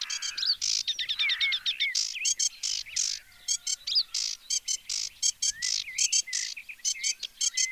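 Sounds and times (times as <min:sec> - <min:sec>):
sedge warbler singing: 0:00.0 - 0:07.7.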